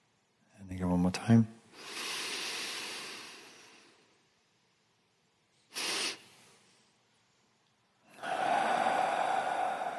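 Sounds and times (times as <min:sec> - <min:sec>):
speech: 0:01.1 - 0:01.6
sharp breath puff: 0:01.8 - 0:04.0, 0:05.7 - 0:06.6, 0:08.2 - 0:09.9
long slow exhale during a breathing exercise: 0:01.8 - 0:04.1, 0:05.7 - 0:06.3, 0:08.1 - 0:09.9.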